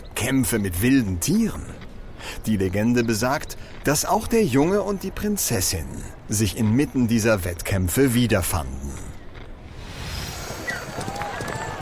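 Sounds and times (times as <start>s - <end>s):
speech: 0.2s - 8.9s
crowd noise with indistinct voices at funeral games: 9.7s - 11.7s
black horses galloping pulling a chariot in a chariot race: 9.9s - 11.7s.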